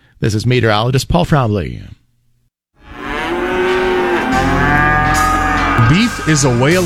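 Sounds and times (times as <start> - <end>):
speech: 0.2 - 2.0, 5.9 - 6.8
cow mooing: 2.8 - 6.8.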